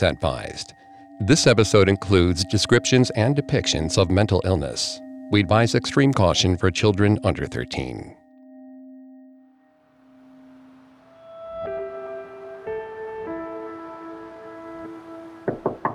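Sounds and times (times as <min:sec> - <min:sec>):
speech: 0:00.0 - 0:08.2
sustained electronic tones: 0:00.0 - 0:15.9
quick firm knocking on a front door: 0:15.5 - 0:15.9.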